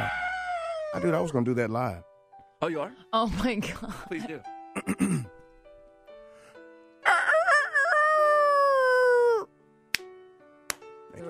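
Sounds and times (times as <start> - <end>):
person imitating a rooster crow: 0.0 - 1.0, 7.0 - 9.5
speech: 0.9 - 5.3.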